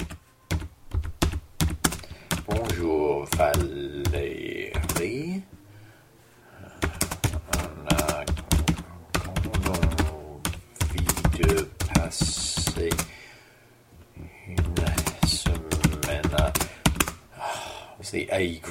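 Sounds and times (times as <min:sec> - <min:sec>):
typing on a computer keyboard: 0:00.0 - 0:05.1, 0:06.8 - 0:13.1, 0:14.6 - 0:17.2
speech: 0:02.8 - 0:05.5, 0:18.4 - 0:18.6.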